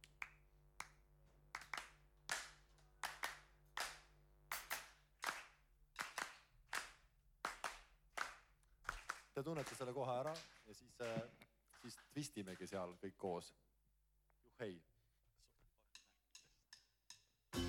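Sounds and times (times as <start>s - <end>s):
hands clapping a patterned rhythm: 0.0s - 13.2s
speech: 9.4s - 13.6s, 14.6s - 14.9s.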